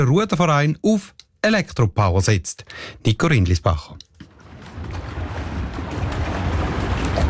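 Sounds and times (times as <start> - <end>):
speech: 0.0 - 4.1
water slapping against the hull of a small electric boat in Zurich Switzerland: 4.1 - 7.2
wind rumble: 4.3 - 7.2.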